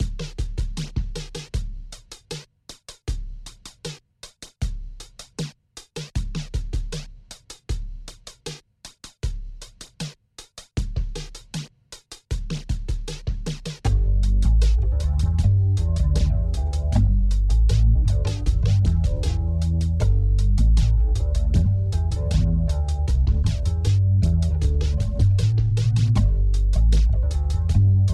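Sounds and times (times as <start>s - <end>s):
bass: 0.0s - 2.1s, 12.5s - 28.1s
drums: 0.0s - 28.1s.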